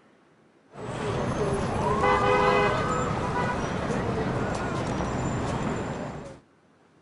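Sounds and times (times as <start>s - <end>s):
Times Square street traffic rumble in New York: 0.7s - 7.0s
indistinct crowd voices in Times Square: 0.8s - 6.4s
car horns honking in Times Square: 1.9s - 3.8s.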